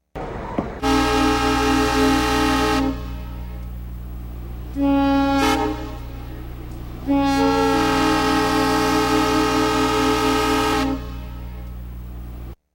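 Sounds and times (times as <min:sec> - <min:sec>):
diesel horn: 0:00.8 - 0:12.6.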